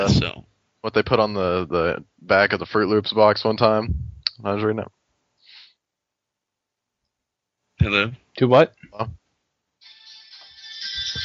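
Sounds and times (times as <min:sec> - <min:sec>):
soft low thumps: 0:00.0 - 0:00.5, 0:03.6 - 0:04.4
speech: 0:00.0 - 0:05.0, 0:07.8 - 0:09.2
steady electronic phone ringtone: 0:09.8 - 0:11.2.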